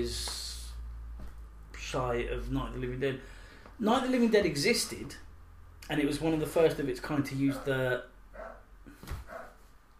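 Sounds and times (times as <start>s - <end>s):
speech: 0.0s - 0.3s, 1.9s - 5.3s, 5.9s - 8.1s
dog barking: 7.5s - 7.8s, 8.4s - 9.6s.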